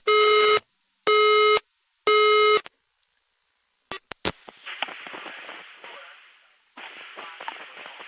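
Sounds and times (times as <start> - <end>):
steady crackling line static: 0.0 - 8.0
telephone line tones beeping over a phone connection: 0.1 - 2.6.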